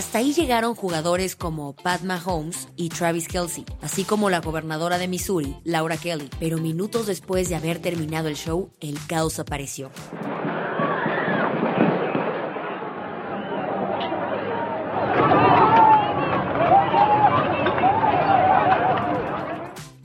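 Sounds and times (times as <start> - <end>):
speech: 0.0 - 10.5
panicked crowd screaming and crying after gunshots: 10.2 - 19.8
sharp yells: 12.6 - 19.7.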